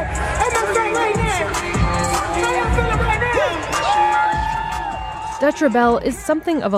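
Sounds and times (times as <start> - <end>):
packed crowd of fans cheering and whooping at a rapper's concert in a museum atrium: 1.1 - 6.0
speech: 5.4 - 6.7.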